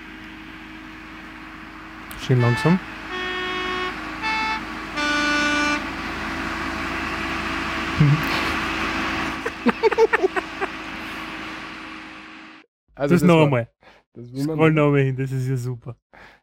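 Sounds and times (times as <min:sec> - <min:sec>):
old yellow postal bus horn on a mountain road: 0:02.1 - 0:07.6, 0:09.2 - 0:11.5
speech: 0:02.2 - 0:02.9, 0:13.0 - 0:16.3
laughter: 0:08.0 - 0:08.7, 0:09.3 - 0:10.8.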